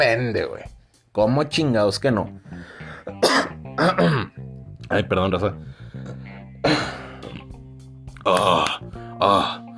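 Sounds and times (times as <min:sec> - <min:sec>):
speech: 0:00.0 - 0:07.0, 0:08.2 - 0:09.6
person burping: 0:03.1 - 0:04.4, 0:06.0 - 0:07.6, 0:08.2 - 0:09.6.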